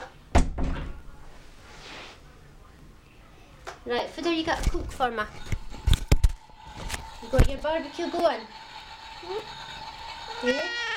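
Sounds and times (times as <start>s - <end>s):
door shutting with a thud: 0.3s - 1.1s
speech: 3.9s - 5.6s, 7.3s - 8.6s, 9.2s - 9.6s, 10.4s - 10.8s.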